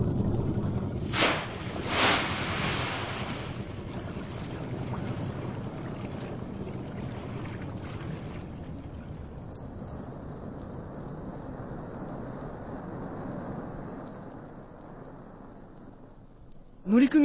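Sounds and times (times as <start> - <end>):
water splashing surges from a boat: 0.0 - 9.8
rushing wash of a boat on open water: 0.0 - 11.1
boat engine rumble on open water: 0.0 - 17.2
speech: 16.9 - 17.2.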